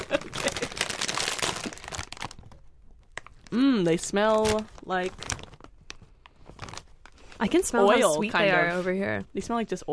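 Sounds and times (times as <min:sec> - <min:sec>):
snack bag being opened and crinkled: 0:00.0 - 0:07.4
speech: 0:03.5 - 0:05.3, 0:07.4 - 0:09.9.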